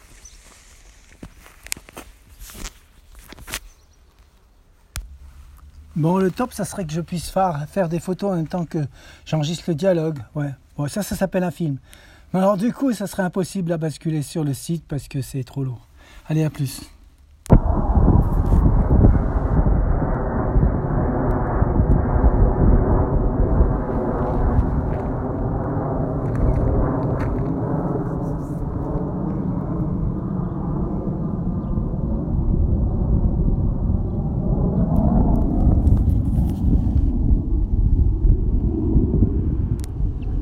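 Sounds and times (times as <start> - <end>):
speech: 6.0 - 16.9
squadron of fighter jets roaring overhead: 17.5 - 40.4.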